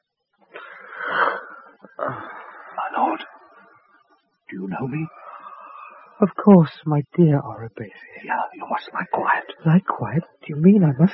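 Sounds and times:
wounded man's raspy wheezing breath: 0.6 - 2.9
speech: 4.8 - 5.2, 6.2 - 11.1.

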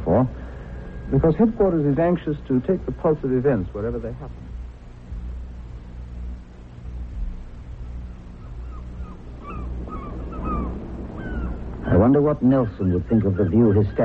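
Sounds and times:
steady low rumble: 0.0 - 13.5
speech: 0.1 - 0.5, 1.1 - 4.4, 12.0 - 14.0
seagulls calling on the column in Trafalgar Square: 7.9 - 14.0.

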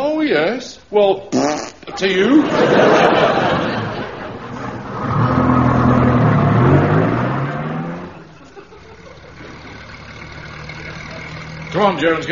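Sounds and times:
speech: 0.2 - 3.7, 11.8 - 12.2
laughter: 2.0 - 5.0, 8.1 - 9.9
temperamental vehicle engine idling roughly and revving: 4.5 - 12.2.

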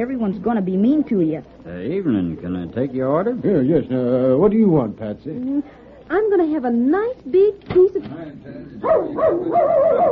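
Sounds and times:
speech: 0.0 - 10.0
dog barking and yelping while chasing a calf: 8.8 - 10.0.

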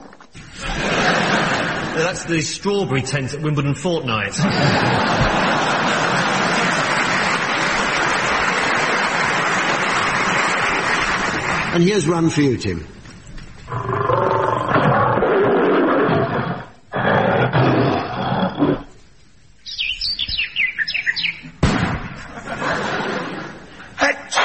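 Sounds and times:
laughter: 0.4 - 2.4, 4.3 - 11.7, 22.2 - 24.3
speech: 2.0 - 5.9, 11.7 - 13.0
lion roaring: 13.7 - 18.9
bright bird-like chirps and tweets: 19.6 - 21.5.

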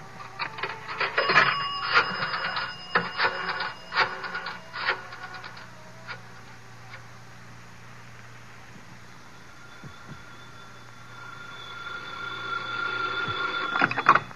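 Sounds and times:
rotary phone being dialed in a phone booth: 0.4 - 6.2
electronic telephone ring tone on the line: 0.7 - 5.6, 9.3 - 14.3.

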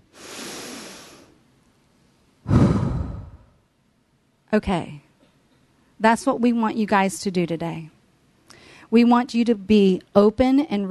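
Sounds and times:
deep breath in and out: 0.1 - 1.4, 2.4 - 3.6
speech: 4.5 - 5.0, 6.0 - 8.0, 8.9 - 10.8.

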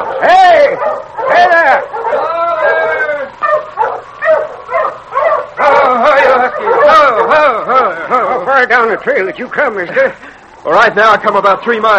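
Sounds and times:
husky sled dogs whining: 0.0 - 9.5
husky sled dogs barking and yelping: 0.0 - 10.6
speech: 0.2 - 1.5, 8.6 - 11.9
laughter: 5.6 - 10.6.

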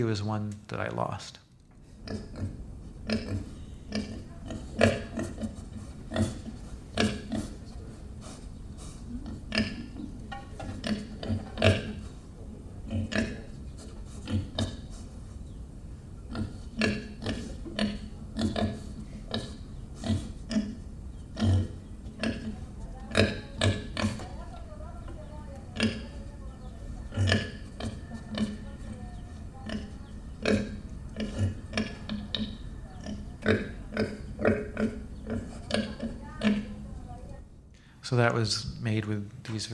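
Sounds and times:
speech: 0.0 - 1.4, 2.0 - 5.6, 38.1 - 39.7
pigs grunting and oinking: 2.0 - 7.6, 9.2 - 12.1, 12.8 - 14.9, 16.3 - 24.2, 25.6 - 36.8.

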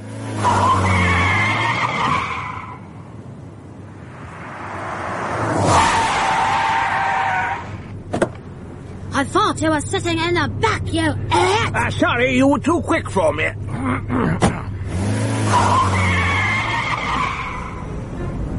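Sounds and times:
car tires squealing: 0.0 - 3.1, 4.1 - 8.0, 13.6 - 18.5
fast car engine roaring off: 0.0 - 18.5
speech: 0.4 - 0.7, 9.2 - 14.4.

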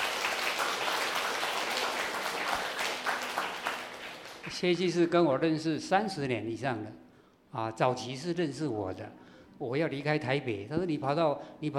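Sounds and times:
room full of people applauding: 0.0 - 4.6
speech: 4.5 - 11.7.

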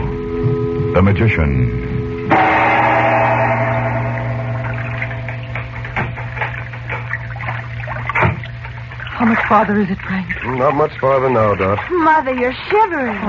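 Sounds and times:
steady low drone: 0.0 - 9.5
speech: 1.0 - 2.6, 9.2 - 13.2
water lapping against a sailboat on the Nile: 3.4 - 13.2.

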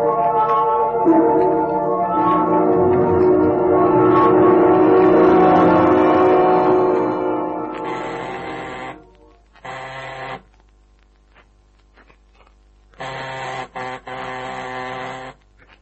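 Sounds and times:
low hum: 0.0 - 9.5
harsh electric door buzzer being pressed: 7.9 - 10.5, 13.0 - 15.4.

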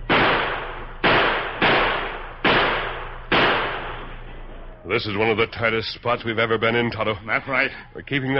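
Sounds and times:
gunshots in a rapid exchange of gunfire: 0.0 - 4.3
speech: 4.9 - 8.3.

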